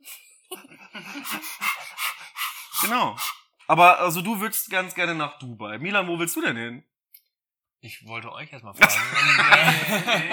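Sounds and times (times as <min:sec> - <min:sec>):
speech: 0:00.5 - 0:01.7, 0:02.8 - 0:06.9, 0:07.8 - 0:10.3
laughter: 0:00.5 - 0:01.9, 0:08.8 - 0:10.3
person imitating a dog panting: 0:01.1 - 0:03.5.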